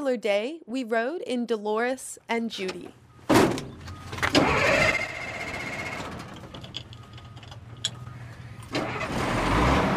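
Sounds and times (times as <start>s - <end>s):
speech: 0.0s - 3.6s
heavy vehicle engine cranking, rumbling and revving: 4.2s - 6.3s, 8.7s - 9.9s.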